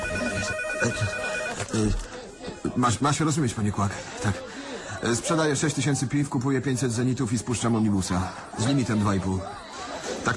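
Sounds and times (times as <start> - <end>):
telephone ringing with steady electronic bell tone: 0.0 - 1.9
speech: 1.8 - 2.1, 2.8 - 9.6.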